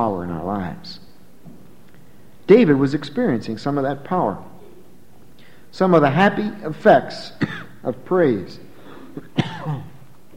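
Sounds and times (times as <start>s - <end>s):
speech: 0.0s - 1.1s, 2.5s - 4.5s, 5.7s - 9.8s
sharp cough from a tickle in the throat: 7.4s - 7.8s, 8.9s - 10.0s.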